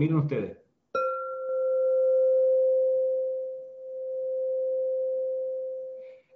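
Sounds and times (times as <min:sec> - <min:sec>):
speech: 0:00.0 - 0:00.6
quartz singing bowl ringing tuned to C: 0:01.0 - 0:06.3.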